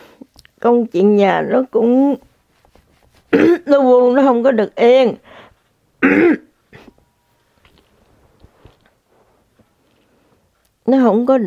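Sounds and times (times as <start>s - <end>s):
speech: 0.6s - 2.3s, 3.3s - 5.3s, 6.0s - 6.4s, 10.9s - 11.4s
loud raspy throat clearing: 3.3s - 3.7s, 6.0s - 7.0s
soft brief cough-like clearing: 3.3s - 3.7s, 6.0s - 7.0s.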